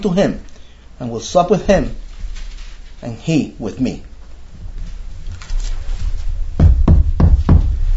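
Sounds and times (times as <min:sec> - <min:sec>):
speech: 0:00.0 - 0:02.0, 0:03.0 - 0:04.1
low hum: 0:00.0 - 0:07.9
knocking on a wooden door: 0:06.6 - 0:07.8.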